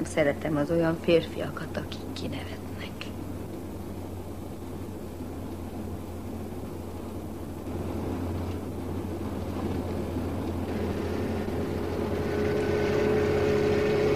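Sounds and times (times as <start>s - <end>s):
speech: 0.1s - 2.7s
police motorcycle engine droning while following a car: 3.1s - 14.1s.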